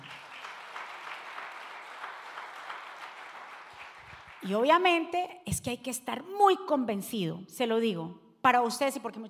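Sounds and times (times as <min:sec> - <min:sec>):
large crowd applauding: 0:00.0 - 0:04.8
speech: 0:04.4 - 0:09.2.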